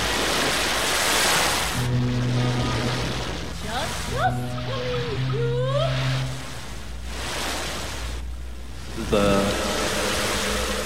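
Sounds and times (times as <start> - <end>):
hiss of ocean surf: 0.0 - 10.8
low humming drone: 1.4 - 10.8
rising swooping tonal cries: 1.8 - 6.8.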